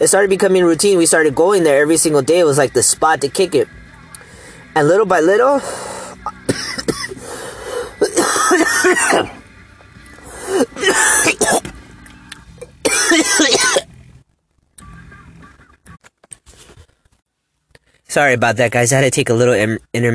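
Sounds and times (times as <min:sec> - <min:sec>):
speech: 0:00.0 - 0:03.8, 0:04.8 - 0:07.0, 0:13.1 - 0:13.8, 0:18.1 - 0:20.1
harsh coughing from smoking a joint: 0:06.2 - 0:07.2, 0:08.0 - 0:09.4, 0:10.5 - 0:11.7, 0:12.8 - 0:13.9.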